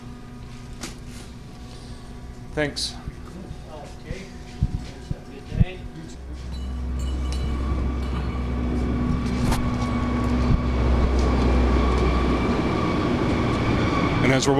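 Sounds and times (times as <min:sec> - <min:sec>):
speech: 0:02.6 - 0:03.1, 0:14.4 - 0:14.5
heavy grain truck engine rumbling: 0:06.2 - 0:14.5.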